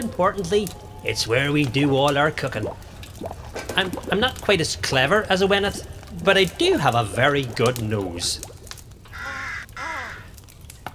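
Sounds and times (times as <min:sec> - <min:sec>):
speech: 0:00.2 - 0:08.5
crow cawing harshly: 0:09.1 - 0:10.3.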